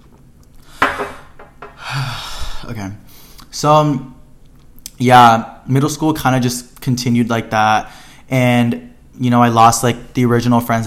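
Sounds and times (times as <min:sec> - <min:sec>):
cup knocking against a hard surface: 0:00.8 - 0:01.8
speech: 0:02.0 - 0:04.1, 0:05.0 - 0:10.8.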